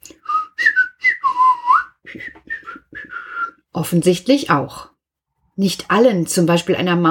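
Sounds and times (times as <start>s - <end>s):
person whistling a short lilting tune: 0.1s - 3.6s
speech: 3.8s - 4.9s, 5.6s - 7.0s.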